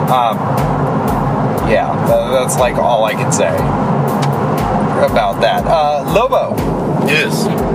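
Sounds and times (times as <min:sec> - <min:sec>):
road noise rumble and hiss inside a moving car: 0:00.0 - 0:07.7
speech: 0:00.1 - 0:00.7, 0:01.7 - 0:07.7.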